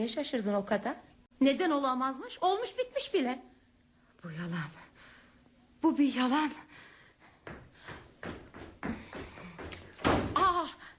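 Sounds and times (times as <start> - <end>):
speech: 0.0 - 3.5, 4.2 - 4.9, 5.8 - 7.6
door slammed shut: 9.9 - 10.6.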